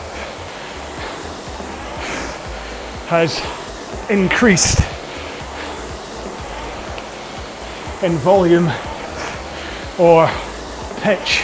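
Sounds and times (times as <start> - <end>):
rowing machine flywheel or water wheel whirring: 0.0 - 11.4
speech: 3.1 - 4.9, 8.0 - 8.9, 10.0 - 11.4.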